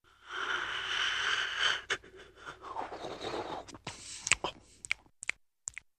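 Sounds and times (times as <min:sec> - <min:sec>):
big quiet yawn: 0:00.1 - 0:04.8
lip smacking: 0:01.9 - 0:05.9.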